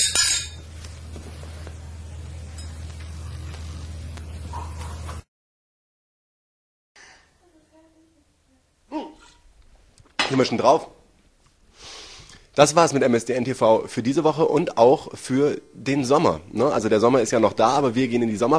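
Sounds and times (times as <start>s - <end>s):
glasses clinking in a toast: 0.0s - 0.6s
speech: 10.3s - 11.0s, 12.6s - 18.5s.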